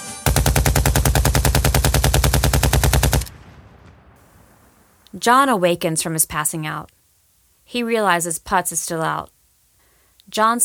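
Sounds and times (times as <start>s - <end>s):
automatic gunfire burst: 0.3s - 5.0s
speech: 5.2s - 7.0s, 7.7s - 9.4s, 10.3s - 10.6s.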